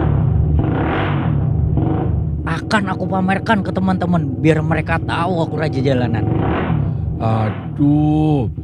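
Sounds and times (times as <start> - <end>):
motorcycle with a modified exhaust revving: 0.0 - 8.6
speech: 2.6 - 6.6, 7.2 - 8.6.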